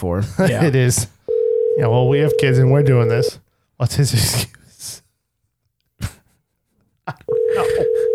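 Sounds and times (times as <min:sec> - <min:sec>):
speech: 0:00.0 - 0:01.2, 0:01.8 - 0:05.0
steady telephone dial tone while a call is being placed: 0:01.3 - 0:01.8, 0:07.3 - 0:08.1.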